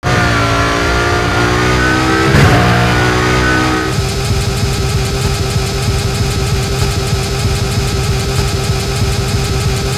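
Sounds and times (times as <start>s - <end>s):
vehicle engine throttling back on low: 0.0s - 9.9s.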